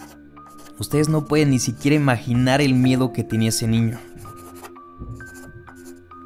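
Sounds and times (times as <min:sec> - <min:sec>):
pencil scribbling on paper: 0:00.0 - 0:01.2, 0:03.9 - 0:06.2
speech: 0:00.8 - 0:04.1.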